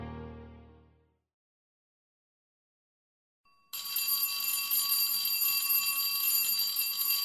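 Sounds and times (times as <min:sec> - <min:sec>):
loud electronic school break bell ringing melodic signal for recess: 0:03.6 - 0:07.2.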